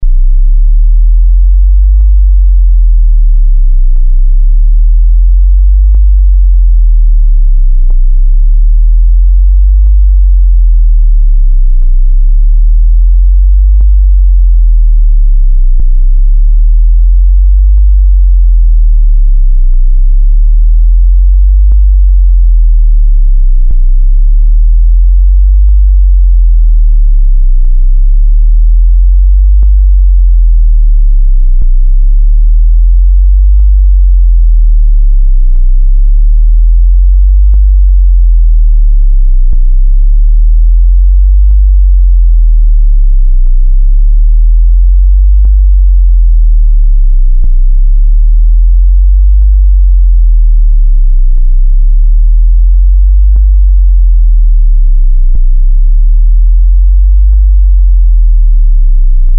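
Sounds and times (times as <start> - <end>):
30Hz to 50Hz medium warbling tone: 0.0 - 59.3.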